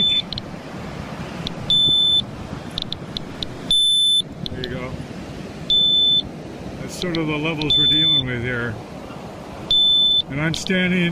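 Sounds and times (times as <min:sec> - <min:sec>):
high-pitched electronic alarm chirping and beeping: 0:00.0 - 0:00.4, 0:01.6 - 0:04.6, 0:05.7 - 0:06.3, 0:07.0 - 0:08.4, 0:09.7 - 0:10.6
speech: 0:07.0 - 0:08.9, 0:10.3 - 0:11.1.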